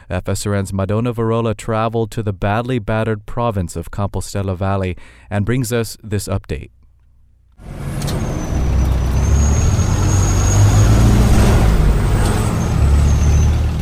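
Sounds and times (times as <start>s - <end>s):
speech: 0.1s - 6.8s
public bus engine with heavy steady drone: 7.6s - 13.8s
thin high bus brake squeal: 7.7s - 13.8s.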